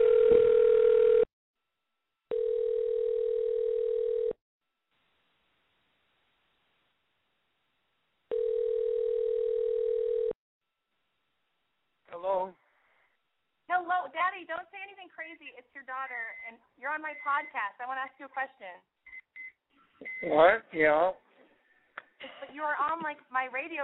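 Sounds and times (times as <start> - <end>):
phone dial tone while placing a call: 0.0 - 1.3, 2.3 - 4.4, 8.3 - 10.4
speech: 15.3 - 19.0, 20.0 - 21.2, 22.2 - 23.8.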